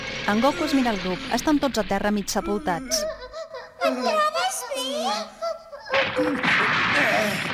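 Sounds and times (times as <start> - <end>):
speech: 0.3 - 3.1, 3.9 - 5.4, 6.0 - 7.5
stone smashed by heavy staff blows: 6.1 - 7.5.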